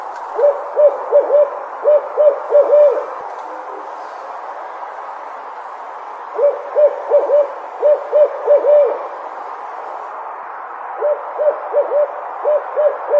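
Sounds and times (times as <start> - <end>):
hiss: 0.0 - 10.4
barred owl hooting: 0.3 - 4.2, 6.2 - 10.0, 11.0 - 13.1.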